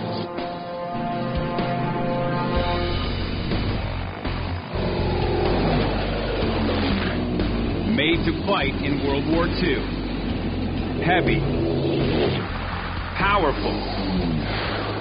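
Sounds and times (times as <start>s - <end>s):
piston aircraft engine running: 0.0s - 14.9s
speech: 8.2s - 10.0s, 11.0s - 11.6s, 13.2s - 14.6s.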